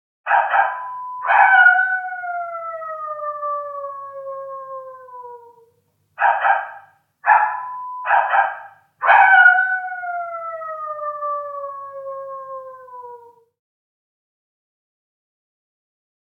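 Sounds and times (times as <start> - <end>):
dog barking: 0.3 - 1.5, 6.2 - 9.5
dog howling: 0.3 - 5.7, 8.2 - 13.4.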